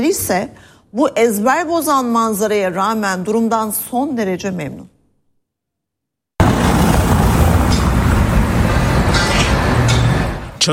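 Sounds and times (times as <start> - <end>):
speech: 0.0 - 4.9
road traffic and a city bus driving over a building's roof: 6.4 - 10.7.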